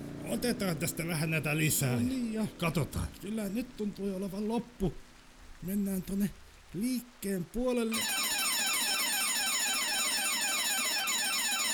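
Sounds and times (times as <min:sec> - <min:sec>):
speech: 0:00.3 - 0:08.2
electronic alarm ringing: 0:08.0 - 0:11.7.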